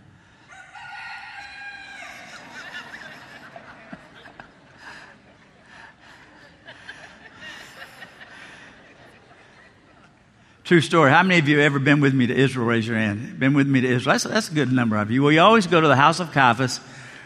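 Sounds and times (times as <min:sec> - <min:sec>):
rooster crowing cock-a-doodle-doo: 0:00.5 - 0:03.1
murmur of people: 0:02.0 - 0:10.7
people chuckling: 0:02.2 - 0:10.2
speech: 0:10.7 - 0:16.9.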